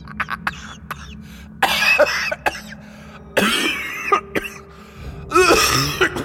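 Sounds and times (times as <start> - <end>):
harsh choking coughs: 0.0 - 2.8, 3.4 - 4.7, 5.3 - 6.2.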